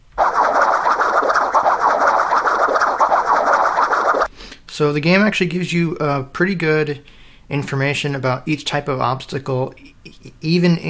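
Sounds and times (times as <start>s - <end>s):
video game coconut obstacle rattling sound effect: 0.0s - 4.3s
speech: 4.8s - 10.8s.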